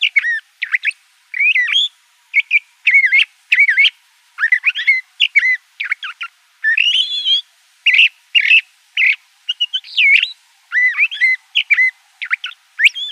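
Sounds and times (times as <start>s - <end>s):
Le Conte's thrasher singing whistled phrases in Arizona: 0.0s - 13.1s.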